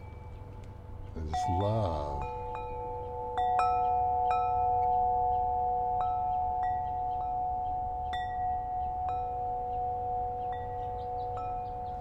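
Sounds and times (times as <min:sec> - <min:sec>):
wind chimes ringing in a breeze: 0:00.0 - 0:11.9
speech: 0:01.2 - 0:02.4.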